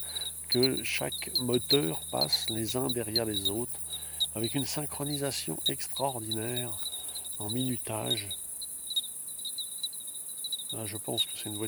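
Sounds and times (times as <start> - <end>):
bell cricket ringing at night on a limestone plateau in the Haut-Diois: 0.0 - 11.6
steady buzzing insect background: 0.0 - 11.6
speech: 0.5 - 3.8, 4.4 - 8.4, 10.7 - 11.6.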